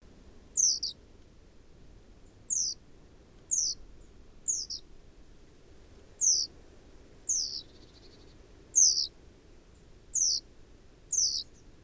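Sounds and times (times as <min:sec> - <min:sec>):
low background noise: 0:00.0 - 0:11.8
great tit (Parus major) high thin descending calls: 0:00.6 - 0:01.0, 0:02.4 - 0:02.8, 0:03.5 - 0:04.9, 0:06.2 - 0:06.5, 0:07.3 - 0:09.2, 0:10.1 - 0:10.5, 0:11.1 - 0:11.7.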